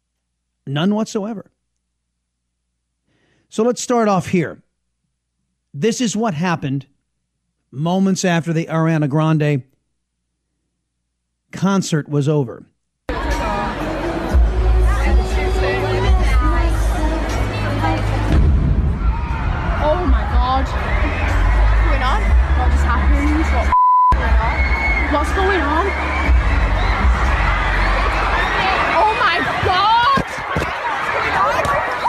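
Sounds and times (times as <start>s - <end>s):
speech: 0.7s - 1.6s, 3.5s - 4.7s, 5.7s - 7.0s, 7.7s - 9.7s, 11.5s - 12.7s
large concert crowd screaming and shouting in panic: 13.1s - 32.0s
brief electronic beep: 23.7s - 24.2s.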